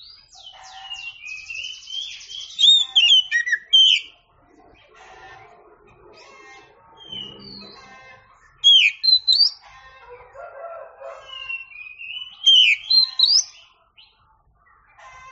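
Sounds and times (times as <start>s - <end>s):
Oriental magpie-robin song: 0.0s - 5.4s, 6.1s - 9.7s, 11.0s - 15.2s.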